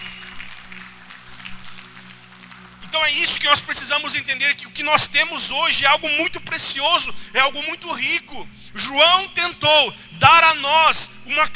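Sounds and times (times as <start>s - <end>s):
congregation applauding: 0.0s - 4.1s
low electrical hum: 0.0s - 11.5s
speech: 3.0s - 11.5s.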